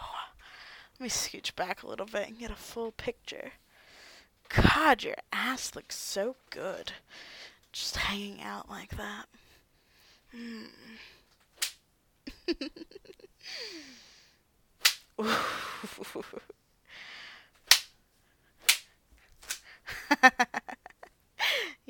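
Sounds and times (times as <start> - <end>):
speech: 1.0 - 3.6, 4.5 - 9.4, 10.3 - 11.2, 12.5 - 14.1, 15.2 - 17.1, 20.1 - 20.7
person moaning with breathy vocal sounds: 10.3 - 11.1
whip strikes on skin: 14.8 - 15.1, 17.6 - 17.9, 18.6 - 19.6.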